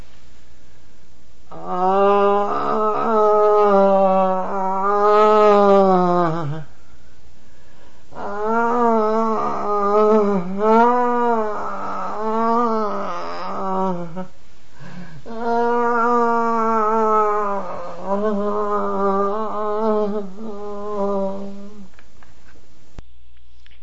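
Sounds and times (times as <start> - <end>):
person groaning at a low steady pitch as used in Reichian therapy: 1.5 - 6.8, 8.1 - 21.9.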